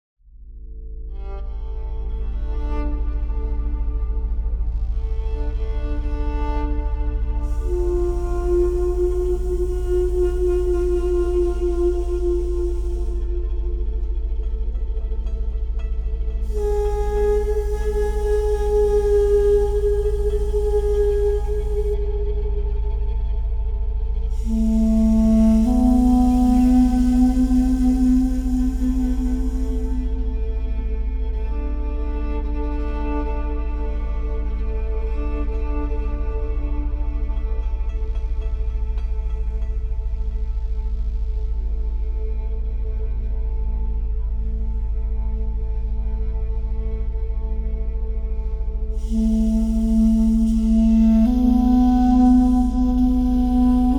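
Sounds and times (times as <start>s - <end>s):
cinematic drones: 0.6s - 53.9s.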